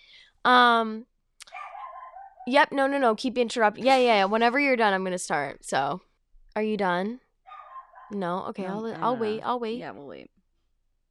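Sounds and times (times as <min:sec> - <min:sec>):
speech: 0:00.4 - 0:01.1, 0:02.4 - 0:07.2, 0:08.1 - 0:10.4
dog letting out a drawn-out tonal bark: 0:01.4 - 0:02.5, 0:07.5 - 0:08.2.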